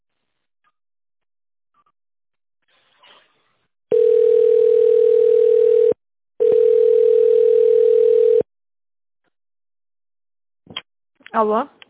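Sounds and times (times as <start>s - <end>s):
telephone ringing tone while a call to a company waits to connect: 3.9s - 8.5s
speech: 11.4s - 11.8s.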